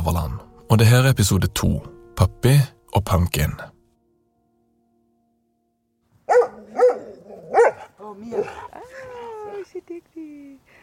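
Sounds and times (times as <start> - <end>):
speech: 0.1 - 3.7, 8.2 - 8.8
dog barking in a garden during fetch: 6.3 - 8.6
dog whining, yelping and whimpering: 6.3 - 9.7.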